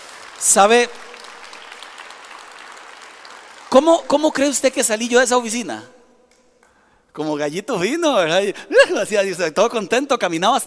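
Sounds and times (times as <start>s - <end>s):
crowd applauding: 0.0s - 4.5s
speech: 0.4s - 1.0s, 3.7s - 6.0s, 7.2s - 10.6s.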